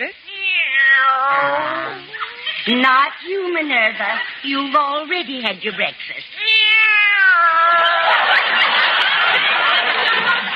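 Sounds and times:
cat meowing: 0.3s - 2.5s, 6.4s - 8.0s
speech: 2.6s - 6.3s, 8.1s - 10.5s
laughter: 7.6s - 10.5s.

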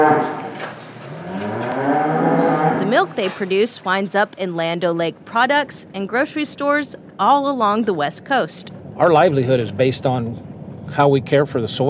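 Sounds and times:
dairy cows mooing on a dairy farm in the San Joaquin Valley: 0.0s - 3.2s
speech: 3.0s - 11.8s.

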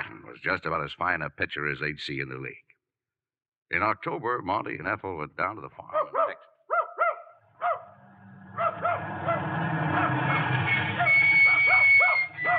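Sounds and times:
speech: 0.4s - 2.7s, 3.7s - 6.5s
dog barking at a farm: 5.9s - 8.0s, 8.6s - 10.2s, 11.0s - 12.5s
continuous low rumbling noise: 7.8s - 12.5s.

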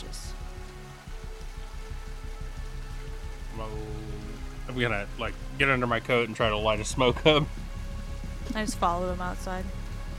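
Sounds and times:
heavy rain: 0.0s - 10.1s
low rhythmic thumps: 0.0s - 10.1s
speech: 4.7s - 7.6s, 8.5s - 9.8s.

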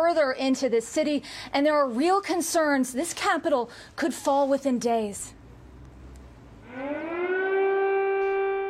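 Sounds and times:
speech: 0.1s - 5.4s
air-raid siren wailing in Kiev Ukraine in the morning: 6.6s - 8.6s.

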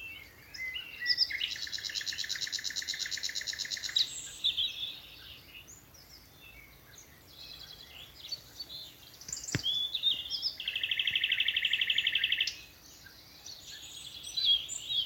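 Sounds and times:
common nightingale song from thickets in a Dorset wood in the evening: 0.0s - 15.0s
sharp click: 9.3s - 9.9s.

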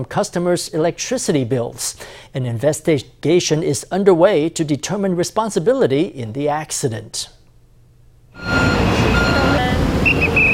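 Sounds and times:
speech: 0.0s - 7.4s
heavy traffic with trucks at a busy intersection: 8.4s - 10.5s.

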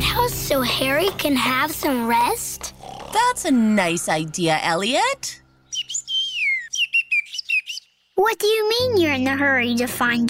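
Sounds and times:
speech: 0.2s - 5.4s, 8.2s - 10.2s
bird chirping with warbling calls and a descending whistle: 3.7s - 8.2s.

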